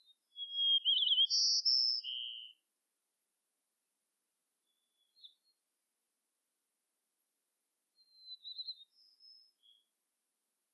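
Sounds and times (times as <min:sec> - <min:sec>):
White-crowned sparrow Zonotrichia leucophrys gambelii singing, Gambel's subspecies: 0:00.0 - 0:02.6, 0:08.0 - 0:09.9.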